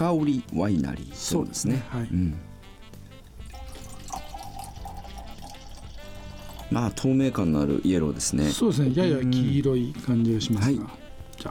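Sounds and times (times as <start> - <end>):
speech: 0.1 - 2.5, 6.7 - 11.5
Koshu dry white wine poured into a glass: 1.2 - 7.0.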